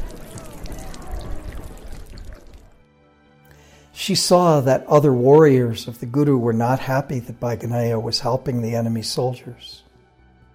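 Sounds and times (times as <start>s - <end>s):
water being poured for drinking: 0.0s - 2.8s
speech: 4.0s - 9.8s.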